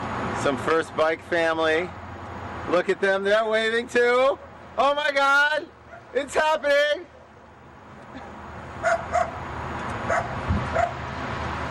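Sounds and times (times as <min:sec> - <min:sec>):
speech: 0:00.4 - 0:02.0, 0:02.6 - 0:07.1
dog barking in short sharp yips at a Ciclovia street event: 0:05.9 - 0:06.2, 0:08.8 - 0:09.4, 0:10.1 - 0:11.0.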